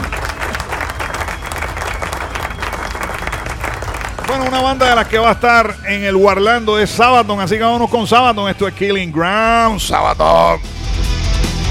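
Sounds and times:
crowd applause: 0.0 - 7.9
speech: 4.3 - 10.8.

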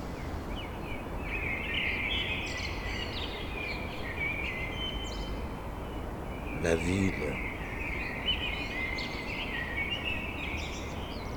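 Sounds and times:
blackbirds singing at dawn: 0.0 - 11.3
steady broadband hiss: 6.5 - 7.5
speech: 6.6 - 7.5.

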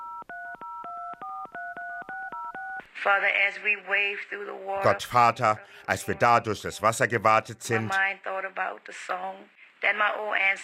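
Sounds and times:
telephone keypad tones as a number is dialed: 0.0 - 2.8
speech: 3.0 - 10.6.

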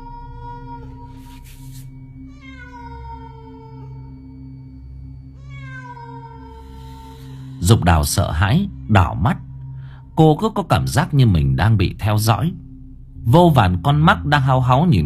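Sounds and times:
cat wailing mournfully in a small village at night: 0.0 - 1.4, 2.2 - 4.2, 5.4 - 7.6
steady low drone: 0.0 - 15.0
speech: 7.6 - 9.4, 10.2 - 12.6, 13.2 - 15.0.

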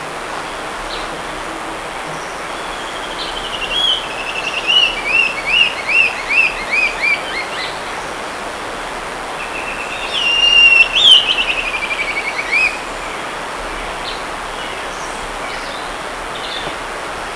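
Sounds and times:
steady background hiss: 0.0 - 17.3
Brown-billed scythebill song in Tausito, Cartago, Costa Rica: 2.7 - 7.8, 9.4 - 12.9.

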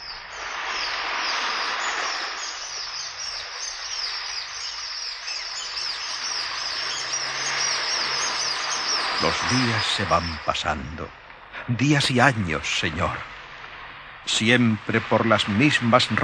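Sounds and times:
flock of seagulls screeching: 0.0 - 10.3
speech: 9.2 - 13.3, 14.2 - 16.2.

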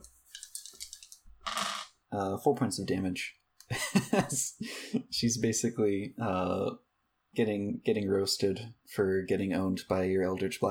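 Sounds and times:
dice clattering across a hard tabletop: 0.4 - 1.9
speech: 2.1 - 10.6
laughter: 3.7 - 5.0.

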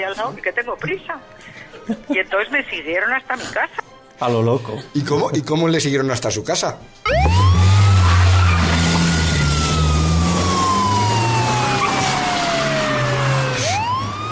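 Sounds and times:
speech: 0.0 - 7.6
police siren wailing: 7.0 - 14.3
vehicle engine rumble: 7.1 - 14.3.

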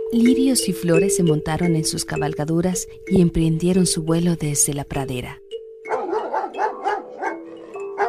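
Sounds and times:
speech: 0.1 - 5.4
wild dogs barking: 5.9 - 8.0.

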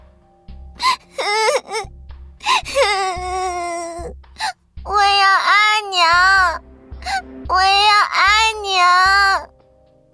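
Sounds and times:
little girl crying in wailing sobs: 0.8 - 9.5.

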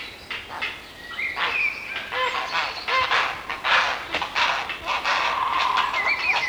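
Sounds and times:
grey heron calling with harsh honking croaks in Sweden: 1.4 - 6.4.

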